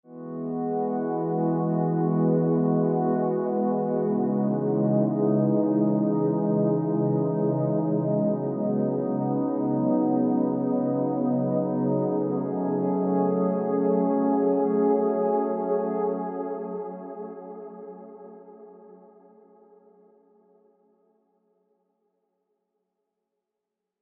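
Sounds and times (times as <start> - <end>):
angelic synth pad: 0.2 - 18.1.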